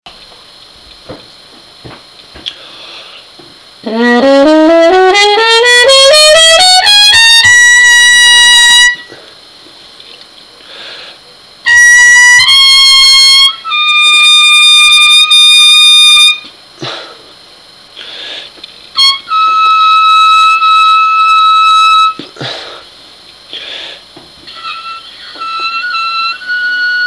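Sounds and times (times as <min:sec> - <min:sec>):
muted trumpet notes: 0:03.8 - 0:09.2, 0:11.6 - 0:16.5, 0:19.0 - 0:22.2, 0:24.5 - 0:27.0.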